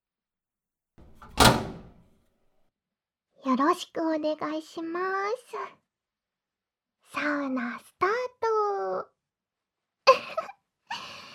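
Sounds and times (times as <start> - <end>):
sauna door closing with a solid thud: 1.0 - 2.0
speech: 3.4 - 5.8, 7.1 - 9.1.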